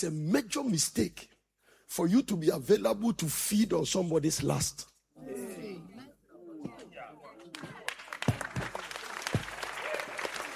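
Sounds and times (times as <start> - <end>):
speech: 0.0 - 1.3, 1.9 - 6.0
crowd clapping: 7.4 - 10.5.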